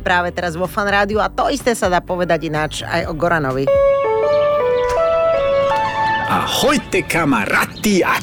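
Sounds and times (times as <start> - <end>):
speech: 0.0 - 3.9, 6.3 - 8.2
ice cream truck jingle of sustained electronic notes: 3.6 - 7.8.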